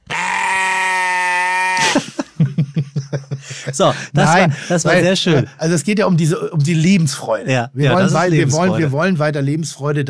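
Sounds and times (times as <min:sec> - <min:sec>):
sheep bleat used as censor bleep: 0:00.0 - 0:01.8
laughter: 0:01.8 - 0:05.5
speech: 0:03.8 - 0:10.0.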